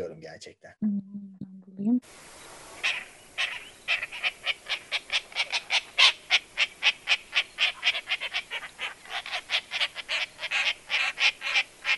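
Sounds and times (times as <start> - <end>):
speech: 0.0 - 1.2, 1.8 - 3.0
harsh raspy Eurasian jay calls: 2.8 - 11.9.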